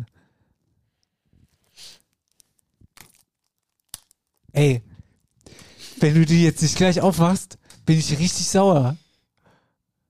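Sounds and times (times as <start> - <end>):
plastic shrink wrap being torn and crinkled off a record: 1.5 - 4.5
speech: 4.6 - 4.9, 6.0 - 9.0.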